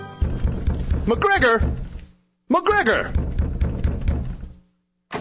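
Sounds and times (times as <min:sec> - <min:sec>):
heavy thuds on a door: 0:00.2 - 0:02.1, 0:02.8 - 0:04.6
speech: 0:01.1 - 0:01.8, 0:02.6 - 0:03.3.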